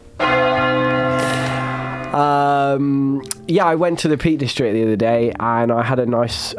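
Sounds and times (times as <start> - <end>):
big bell being struck: 0.0 - 4.0
speech: 2.2 - 6.5.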